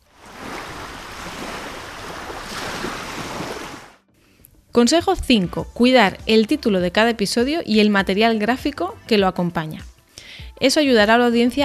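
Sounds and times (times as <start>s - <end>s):
ocean surf waves washing in: 0.0s - 4.0s
speech: 4.8s - 9.9s, 10.6s - 11.6s.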